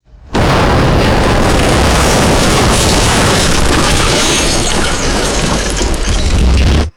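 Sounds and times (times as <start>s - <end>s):
heavy building collapse: 0.0s - 6.9s
debris scattering from a building collapse: 0.3s - 6.9s.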